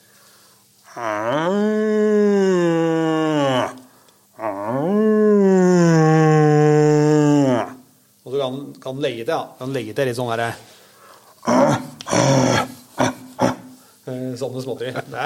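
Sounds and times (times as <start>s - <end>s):
person imitating a red deer stag's roar through a tube: 0.9s - 7.9s, 11.4s - 13.8s
speech: 1.0s - 1.7s, 8.5s - 10.7s, 14.4s - 15.2s.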